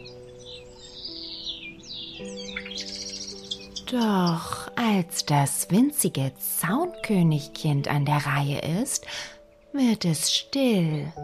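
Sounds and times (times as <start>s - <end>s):
young birds chirping with high twitters and peeps: 0.0s - 4.8s
soft steady musical drone: 0.0s - 11.2s
speech: 3.9s - 11.2s.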